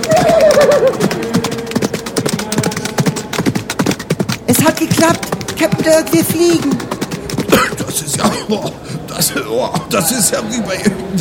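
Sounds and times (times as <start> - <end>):
show-jumping tournament horse whinnying: 0.0 - 1.9
show-jumping tournament horse hoofbeats: 0.0 - 11.1
speech: 4.5 - 6.9, 7.5 - 11.1.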